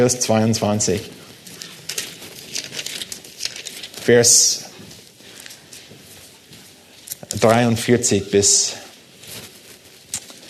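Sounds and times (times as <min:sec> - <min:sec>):
speech: 0:00.0 - 0:01.2, 0:04.0 - 0:04.6, 0:07.4 - 0:08.8
pages of a book being flipped: 0:01.3 - 0:07.5, 0:09.0 - 0:10.4.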